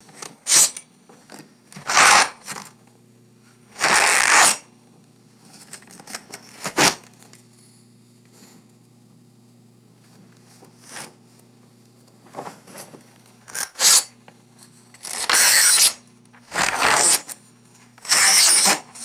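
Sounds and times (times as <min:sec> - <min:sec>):
paper sliced with razor blade: 0:00.4 - 0:00.8, 0:01.8 - 0:02.6, 0:03.8 - 0:04.6, 0:13.5 - 0:14.2, 0:15.0 - 0:17.4, 0:18.0 - 0:19.0.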